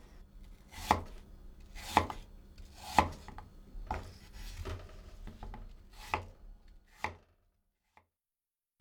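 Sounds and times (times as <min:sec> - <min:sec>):
knife chopping apple on cutting board: 0:00.7 - 0:02.2, 0:02.8 - 0:04.1.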